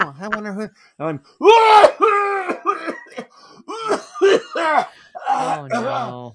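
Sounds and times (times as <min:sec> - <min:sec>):
speech: 0:00.2 - 0:02.2, 0:03.9 - 0:06.3
person imitating coughing and choking on a donut in a coffee shop: 0:01.7 - 0:06.2.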